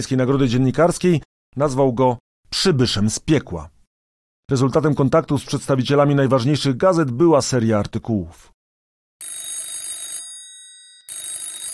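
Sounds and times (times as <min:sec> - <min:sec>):
speech: 0:00.0 - 0:03.7, 0:04.5 - 0:08.6
telephone bell ringing with long metallic rings: 0:09.2 - 0:11.7.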